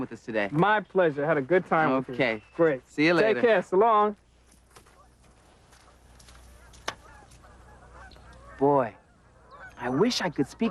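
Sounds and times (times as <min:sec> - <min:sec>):
speech: 0:00.0 - 0:04.2, 0:08.6 - 0:09.0, 0:09.8 - 0:10.6
steady outdoor noise: 0:00.0 - 0:10.6
duck calling as it is released: 0:04.8 - 0:10.6.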